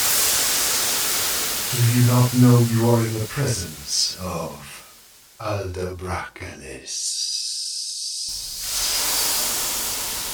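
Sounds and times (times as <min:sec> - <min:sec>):
blast of steam hissing: 0:00.0 - 0:05.4, 0:07.2 - 0:10.3
speech: 0:01.7 - 0:04.8, 0:05.4 - 0:07.4.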